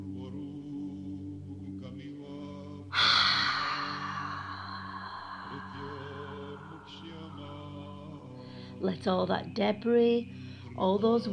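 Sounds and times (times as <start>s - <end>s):
slow deep inhalation during a guided breathing exercise: 2.9s - 8.8s, 10.3s - 10.8s
continuous low droning tone: 3.0s - 10.6s
speech: 8.8s - 11.3s.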